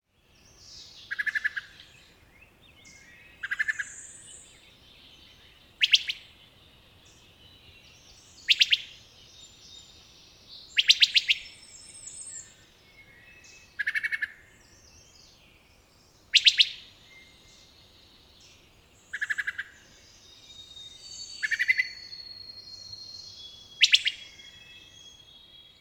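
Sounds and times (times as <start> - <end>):
wood thrush bup pit call volleys in NY: 0.7 - 15.4, 16.3 - 17.9, 18.5 - 25.6.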